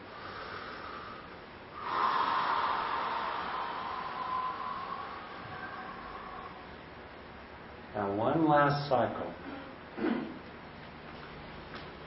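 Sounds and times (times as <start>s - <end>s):
deep breath in and out: 0.0s - 7.0s
speech: 8.0s - 9.4s.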